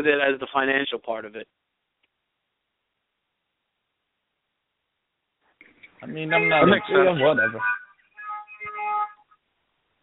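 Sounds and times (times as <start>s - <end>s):
speech: 0.0s - 1.6s, 6.0s - 7.8s
car horns beeping on the street: 6.1s - 9.2s.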